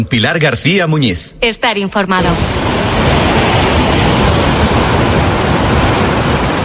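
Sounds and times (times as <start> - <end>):
speech: 0.0 - 3.6
ocean surf roaring: 2.2 - 6.6.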